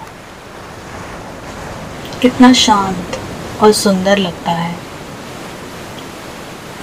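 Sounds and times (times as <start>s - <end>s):
ocean waves washing on the shore: 0.0s - 6.8s
windy hiss: 0.0s - 6.8s
speech: 2.2s - 4.8s.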